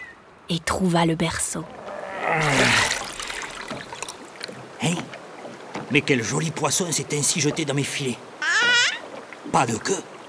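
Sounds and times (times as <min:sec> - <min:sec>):
speech: 0:00.5 - 0:02.9, 0:04.8 - 0:05.2, 0:05.9 - 0:10.2
river water flowing past a floating wooden cradle: 0:01.3 - 0:10.2.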